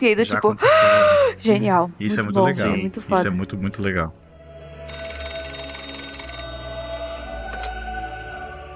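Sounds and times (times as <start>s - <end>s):
speech: 0.0s - 4.2s
telephone bell ringing in a rapid metallic trill: 4.8s - 7.7s.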